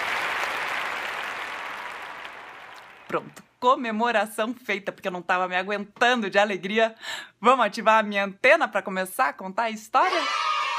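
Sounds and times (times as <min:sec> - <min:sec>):
audience applause: 0:00.0 - 0:03.4
speech: 0:03.1 - 0:10.5.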